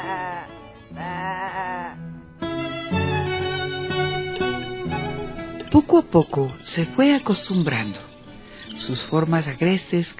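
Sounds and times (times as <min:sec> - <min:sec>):
speech: 0:00.0 - 0:01.9, 0:05.8 - 0:08.1, 0:08.8 - 0:10.1
sheep bleating: 0:00.0 - 0:04.6.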